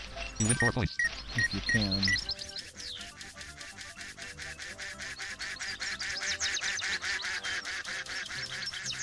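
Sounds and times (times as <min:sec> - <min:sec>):
speech: 0:00.4 - 0:02.3
video game duck quacking sound effect: 0:03.5 - 0:08.9.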